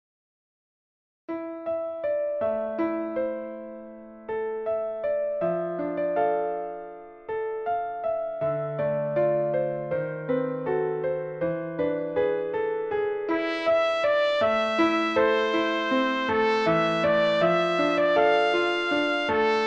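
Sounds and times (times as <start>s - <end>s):
piano in a trumpet and piano duet: 1.3s - 19.6s
trumpet in a trumpet and piano duet: 13.3s - 19.6s.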